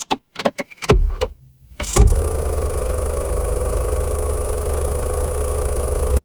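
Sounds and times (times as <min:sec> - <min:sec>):
mechanical engine: 0:01.5 - 0:06.2.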